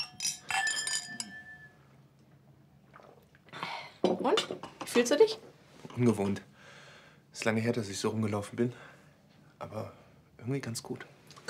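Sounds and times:
drinking glasses clinking in a toast: 0:00.0 - 0:01.9
speech: 0:05.0 - 0:06.5, 0:07.4 - 0:09.0, 0:09.6 - 0:11.4.

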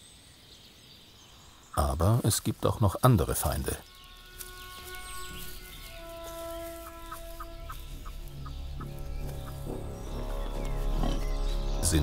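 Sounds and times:
rumbling outdoor background: 0:00.0 - 0:12.0
speech: 0:01.8 - 0:04.0
capercaillie hen clucking: 0:06.6 - 0:09.8.

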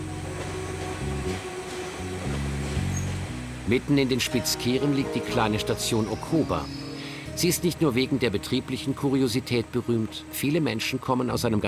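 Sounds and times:
train diesel engine droning while shunting on a double switchback: 0:00.0 - 0:03.7
speech: 0:03.7 - 0:06.8, 0:07.4 - 0:11.6.

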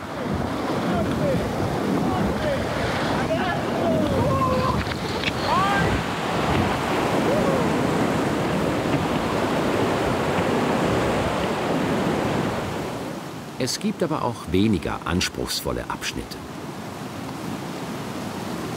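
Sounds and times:
glacial mountain river rushing: 0:00.0 - 0:18.7
speech: 0:13.6 - 0:16.6.

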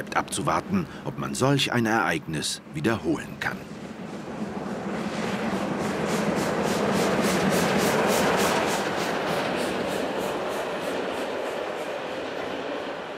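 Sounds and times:
speech: 0:00.0 - 0:03.8
steam train running on rails: 0:03.4 - 0:13.1.

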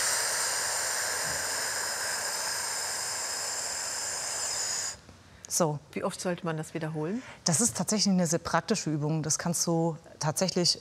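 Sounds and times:
slow exhale during breathing exercise: 0:00.0 - 0:05.0
speech: 0:05.5 - 0:10.8.

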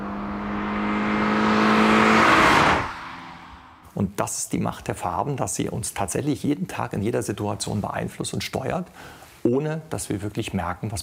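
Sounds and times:
car engine roaring with a whirring tone: 0:00.0 - 0:04.0
speech: 0:04.0 - 0:11.0.

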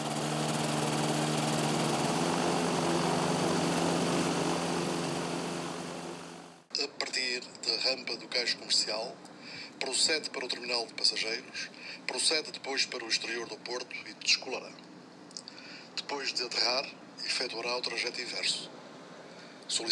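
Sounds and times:
motor engine running with a steady droning hum: 0:00.0 - 0:06.7
speech: 0:07.3 - 0:14.9, 0:16.0 - 0:18.8, 0:19.7 - 0:19.9.

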